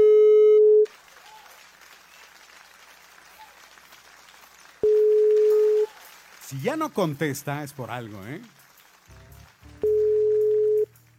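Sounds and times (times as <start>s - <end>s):
telephone ringback tone over the line: 0.0s - 0.8s, 4.8s - 5.9s, 9.8s - 10.9s
speech: 6.6s - 8.6s.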